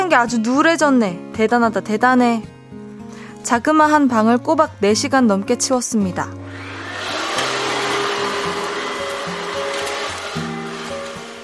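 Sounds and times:
speech: 0.1 - 2.5, 3.4 - 6.7
vacuum cleaner running: 6.4 - 11.4.

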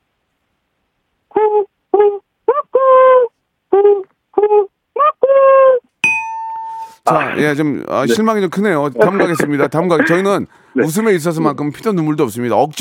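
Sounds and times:
person imitating a mountain bird call: 1.3 - 5.9
bright bell ding: 6.0 - 7.0
speech: 7.1 - 12.7
laughter: 8.9 - 10.4.

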